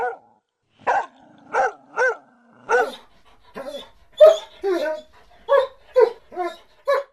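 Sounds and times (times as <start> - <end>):
dog barking: 0.0 - 3.0, 5.4 - 7.1
dog yipping: 2.0 - 3.0, 3.6 - 7.1
dog growling whine: 2.4 - 6.8.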